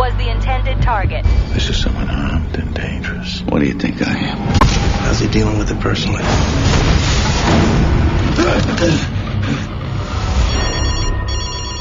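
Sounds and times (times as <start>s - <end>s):
heavy continuous low rumble: 0.0s - 11.8s
speech: 3.6s - 4.2s, 5.3s - 6.9s, 8.6s - 9.7s
telephone ringing: 10.4s - 11.8s.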